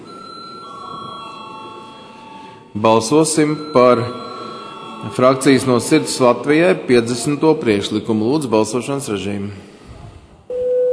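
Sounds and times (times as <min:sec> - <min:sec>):
steady electric bell ringing: 0:00.0 - 0:02.6, 0:03.2 - 0:06.4
speech: 0:02.8 - 0:04.3, 0:05.0 - 0:09.7.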